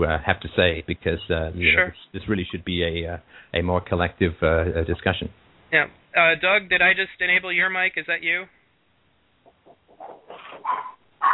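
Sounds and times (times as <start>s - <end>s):
speech: 0.0s - 8.6s
small dog yelping and whining: 10.0s - 11.3s.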